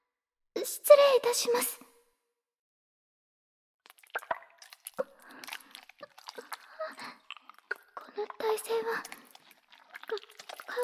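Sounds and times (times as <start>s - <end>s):
speech: 0.6s - 1.8s, 8.2s - 9.2s
wet squishy soaping as a body is washed with soap: 3.8s - 10.8s
drips and light taps: 3.9s - 10.8s.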